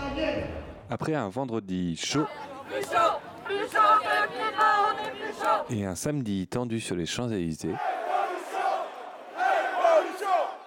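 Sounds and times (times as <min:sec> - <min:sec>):
speech: 0:00.9 - 0:08.0
large protest march crowd chanting in unison in a street: 0:02.1 - 0:05.9, 0:07.7 - 0:10.6.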